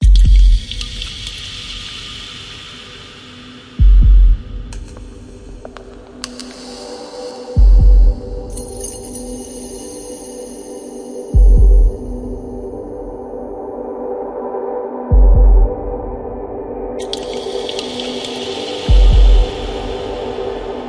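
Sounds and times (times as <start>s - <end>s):
epic kick drum intro: 0.0s - 0.6s, 3.8s - 4.8s, 7.6s - 8.4s, 11.4s - 12.2s, 15.1s - 15.8s, 18.9s - 19.7s.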